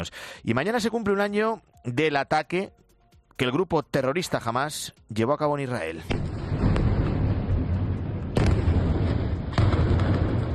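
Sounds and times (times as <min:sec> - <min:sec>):
speech: 0:00.0 - 0:02.8, 0:03.4 - 0:06.3
heavy explosions: 0:06.0 - 0:10.5.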